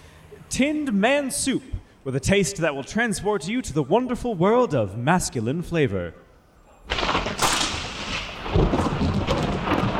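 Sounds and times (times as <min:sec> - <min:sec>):
speech: 0:00.5 - 0:06.2
heavy rain: 0:06.9 - 0:09.9
thunder rumbling: 0:06.9 - 0:09.9.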